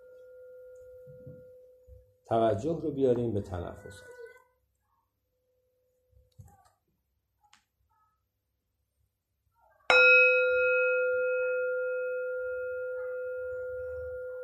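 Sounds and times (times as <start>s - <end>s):
meditation bell ringing: 0.0s - 2.2s, 9.9s - 14.4s
speech: 2.3s - 4.2s.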